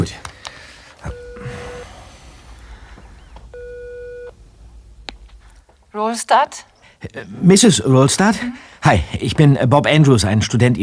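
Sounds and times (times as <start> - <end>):
faint noise: 0.0 - 10.8
mobile phone ringback tone over loudspeaker: 1.1 - 4.4
speech: 6.0 - 10.8.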